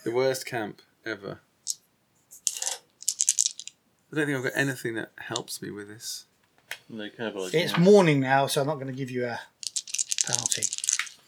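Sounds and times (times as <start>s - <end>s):
speech: 0.0s - 1.8s, 4.1s - 6.3s, 6.9s - 9.5s, 10.3s - 10.8s
dice clattering and rattling: 2.4s - 3.8s, 9.6s - 11.2s.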